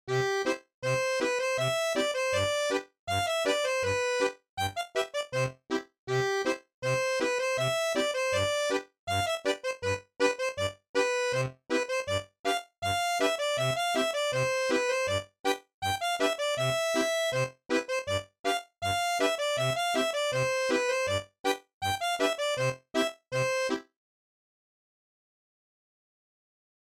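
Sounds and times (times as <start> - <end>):
Scottish accordion: 0.1 - 23.9.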